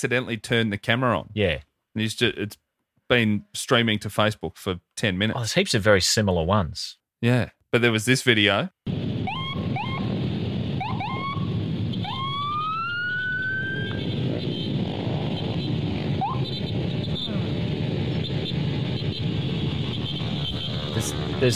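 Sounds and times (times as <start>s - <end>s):
speech: 0.0s - 8.8s
police car siren yelping and wailing: 9.1s - 21.5s.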